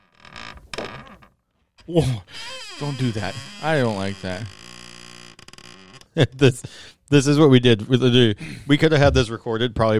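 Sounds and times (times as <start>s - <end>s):
wooden chair creaking: 0.0s - 6.4s
speech: 1.9s - 4.6s, 6.2s - 9.9s.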